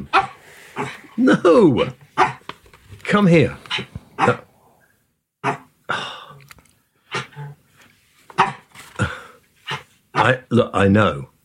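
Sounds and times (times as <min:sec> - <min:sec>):
small female dog grunting while tugging on a squeezy ball: 0:00.0 - 0:02.4, 0:03.7 - 0:04.6, 0:08.4 - 0:10.4
speech: 0:00.8 - 0:02.3, 0:03.1 - 0:04.5, 0:10.2 - 0:11.3.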